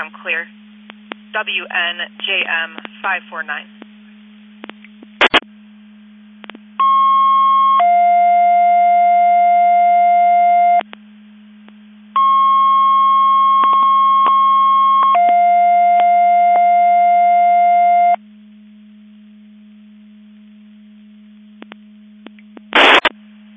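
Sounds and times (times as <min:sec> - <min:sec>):
constant low hum: 0:00.0 - 0:23.5
speech: 0:00.2 - 0:00.6, 0:01.3 - 0:03.8
short bursts on a radio channel: 0:05.2 - 0:05.4, 0:22.7 - 0:23.1
fire alarm alerting receiver test tones over a Mutual Aid Box Alarm System radio channel: 0:06.8 - 0:10.8, 0:12.2 - 0:18.2.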